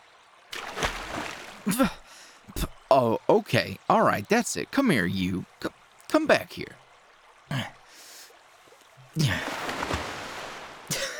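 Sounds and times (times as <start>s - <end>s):
water splashing while swimming: 0.4s - 11.1s
speech: 1.7s - 2.0s, 2.6s - 6.8s, 7.5s - 7.8s, 9.2s - 9.5s
voiced exclamation: 1.7s - 6.8s, 7.5s - 7.9s, 9.0s - 9.6s.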